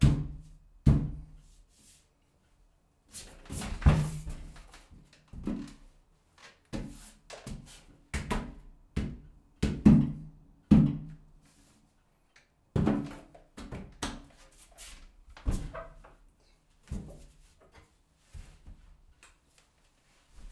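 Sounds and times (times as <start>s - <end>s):
body bumping and hitting an empty bathtub: 0.0s - 1.4s, 3.5s - 5.8s, 6.8s - 11.2s, 12.8s - 14.4s, 15.2s - 16.2s, 16.8s - 17.4s.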